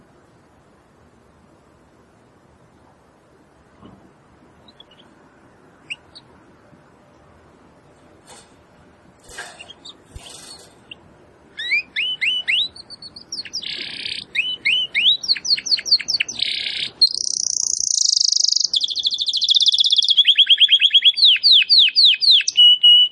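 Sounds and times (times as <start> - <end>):
Belgian domestic canary singing: 4.6 - 6.4, 9.3 - 23.0.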